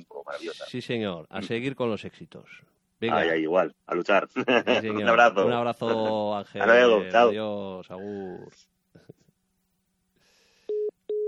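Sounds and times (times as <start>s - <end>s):
speech: 0.3s - 9.2s
telephone call beeps: 10.7s - 11.2s.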